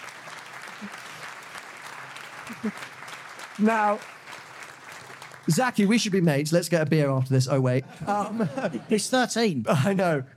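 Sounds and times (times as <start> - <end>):
audience applause: 0.0 - 7.2
laughter: 2.4 - 2.9, 7.7 - 10.3
speech: 2.5 - 3.0, 3.6 - 4.2, 5.5 - 10.3.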